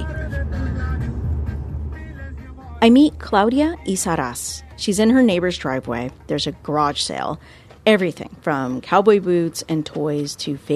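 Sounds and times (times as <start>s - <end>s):
car driving heard from inside the vehicle: 0.0s - 7.9s
speech: 2.8s - 10.7s.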